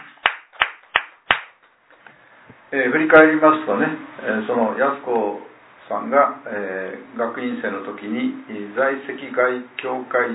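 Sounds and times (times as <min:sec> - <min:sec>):
hand clapping at a birthday gathering: 0:00.0 - 0:01.8
speech: 0:02.7 - 0:10.3.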